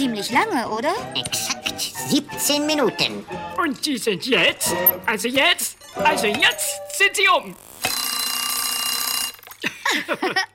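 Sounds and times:
speech: 0.0s - 7.7s, 9.9s - 10.5s
rising tonal chirps: 5.7s - 8.9s
alarm clock ringing: 5.8s - 9.5s
laughter: 9.6s - 10.5s.

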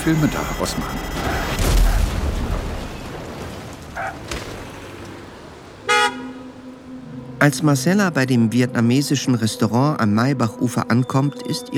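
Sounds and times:
speech: 0.0s - 1.4s, 7.4s - 11.7s
car crashing into a traffic light: 0.9s - 6.6s
roaring traffic: 2.9s - 9.4s
car horn toot: 4.0s - 6.8s.

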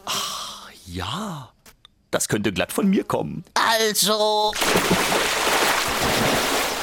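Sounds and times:
speech: 0.9s - 6.4s
heavy splashing water as a giant falls in: 4.6s - 6.8s.

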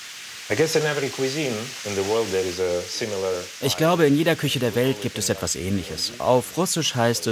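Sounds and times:
minced meat and onions frying in a pan: 0.0s - 7.3s
speech: 0.5s - 7.3s.

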